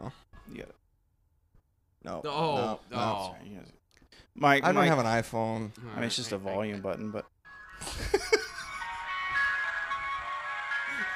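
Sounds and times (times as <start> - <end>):
speech: 2.0 - 3.8, 4.4 - 8.3
tinny ice cream truck jingle, slightly off-key and warbling: 7.4 - 11.1.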